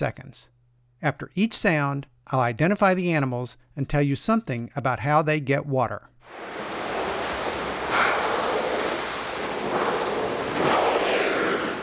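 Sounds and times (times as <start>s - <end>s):
speech: 0.0s - 6.6s
ocean surf: 6.3s - 11.8s
whale spouting water as it surfaces: 6.3s - 11.8s
wind: 6.3s - 11.8s.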